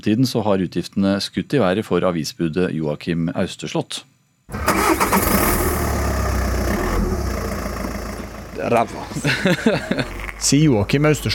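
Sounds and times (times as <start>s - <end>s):
speech: 0.0s - 5.2s, 8.6s - 11.3s
newspaper carrier's private car engine cranking and starting: 4.5s - 11.3s
laughter: 8.8s - 11.3s.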